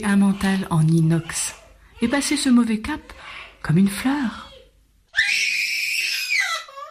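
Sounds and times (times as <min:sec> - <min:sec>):
speech: 0:00.0 - 0:04.5
baby screaming: 0:05.1 - 0:06.9.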